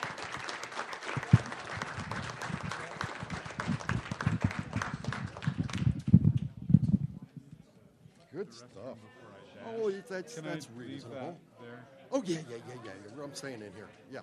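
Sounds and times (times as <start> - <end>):
audience applauding a panel: 0.0 - 6.2
speech: 8.5 - 11.5, 12.1 - 14.2.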